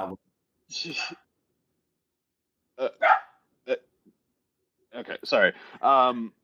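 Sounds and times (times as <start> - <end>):
speech: 0.0 - 1.3, 2.8 - 3.9, 4.9 - 6.4
dog barking: 3.0 - 3.4.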